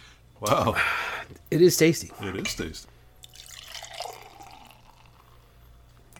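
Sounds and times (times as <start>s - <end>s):
low hum: 0.0s - 6.1s
speech: 0.4s - 3.0s
beer pouring from a bottle into a glass: 3.2s - 5.5s.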